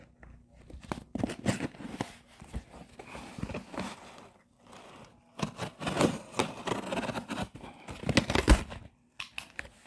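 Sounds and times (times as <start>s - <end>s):
cardboard crinkling: 0.0s - 8.8s
retractable blade cutting open a taped cardboard box: 5.3s - 8.7s.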